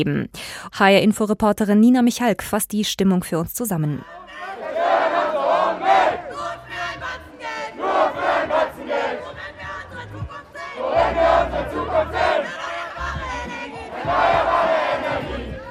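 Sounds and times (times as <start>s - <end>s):
speech: 0.0s - 4.5s
crowd of school students chanting at a climate strike protest on the Opernplatz in Frankfurt Germany: 4.0s - 15.6s.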